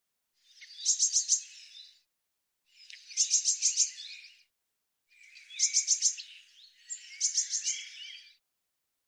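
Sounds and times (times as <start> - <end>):
Eurasian blue tit giving harsh rattling bursts of rapid high notes: 0.8 - 1.4, 3.1 - 4.0, 5.5 - 6.3, 7.2 - 7.9.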